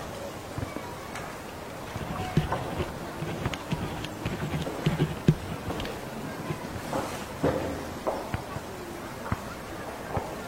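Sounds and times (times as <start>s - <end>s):
scattered voices talking in a classroom after school: 0.0s - 10.4s
knocks and scrapes of chairs or desks being moved: 1.9s - 7.9s.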